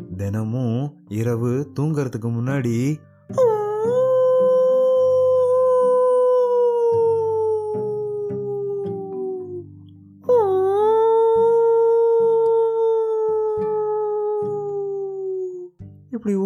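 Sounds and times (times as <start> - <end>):
soft low music: 0.0 - 16.4
speech: 0.2 - 3.5
fox howling: 3.4 - 15.7.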